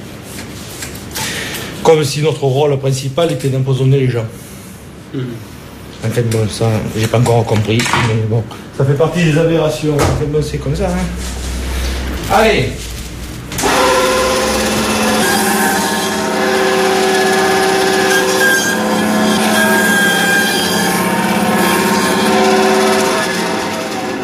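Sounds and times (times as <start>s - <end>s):
speech: 1.9s - 4.5s, 5.1s - 11.4s, 12.3s - 12.9s
power saw cutting through veal bone: 13.5s - 24.2s.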